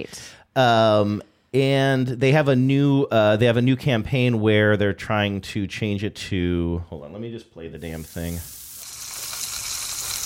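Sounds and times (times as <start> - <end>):
speech: 0.0 - 8.6
Spam sizzling as it fries in a hot pan: 7.9 - 10.2.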